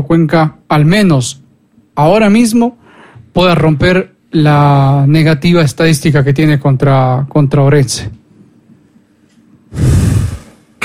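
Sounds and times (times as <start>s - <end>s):
speech: 0.0s - 1.4s, 2.0s - 8.2s, 9.7s - 10.0s
heavy breathing: 9.7s - 10.8s.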